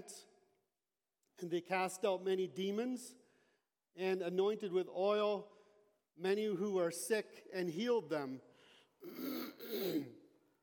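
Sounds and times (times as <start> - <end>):
speech: 0.0 - 0.3, 1.4 - 3.2, 4.0 - 5.6, 6.2 - 10.2
person clearing throat: 9.0 - 10.3.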